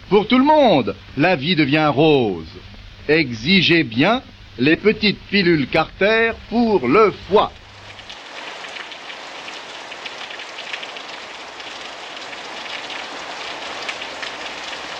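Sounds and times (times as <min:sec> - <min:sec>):
steady rain: 0:00.0 - 0:14.9
speech: 0:00.1 - 0:07.6
raindrops spattering on a surface: 0:07.6 - 0:14.9.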